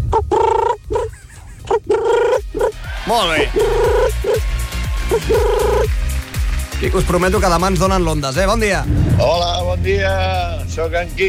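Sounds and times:
person imitating pigeon cooing: 0.1 - 2.7, 3.4 - 4.5, 5.1 - 5.9
speech: 3.1 - 4.5, 5.1 - 6.0, 6.8 - 11.2.

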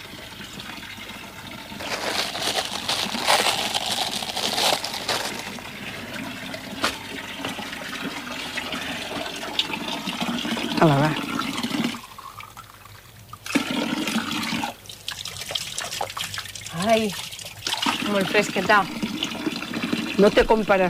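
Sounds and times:
water gushing from spring fountain: 0.0 - 20.8
spring fountain water filling a glass: 5.5 - 20.4
speech: 18.4 - 19.0, 20.2 - 20.8.

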